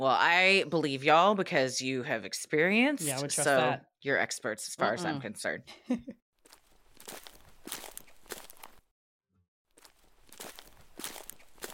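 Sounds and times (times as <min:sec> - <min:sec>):
speech: 0:00.0 - 0:06.2
footsteps crunching over gravel or dry leaves: 0:06.4 - 0:08.9, 0:09.7 - 0:11.7.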